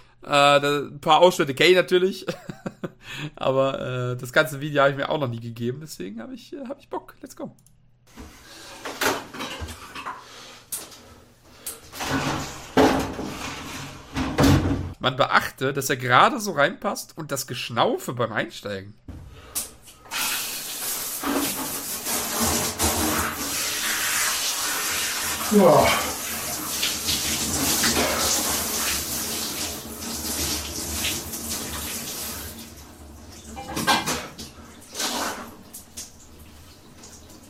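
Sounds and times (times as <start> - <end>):
speech: 0.2 - 2.6, 3.2 - 7.7, 15.0 - 19.2, 25.5 - 26.1
shower water running: 8.1 - 14.7, 19.4 - 37.4.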